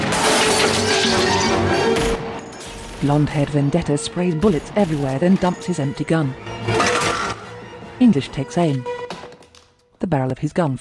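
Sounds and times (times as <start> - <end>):
glass smashing and scattering in an underground car park: 0.0 - 3.1
speech: 3.0 - 6.9, 8.0 - 8.9, 10.0 - 10.7.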